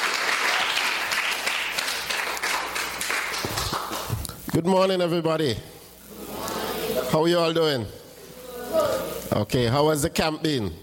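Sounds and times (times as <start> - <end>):
crowd applauding: 0.0 - 4.2
speech: 4.6 - 5.7, 7.1 - 8.0, 8.7 - 10.8.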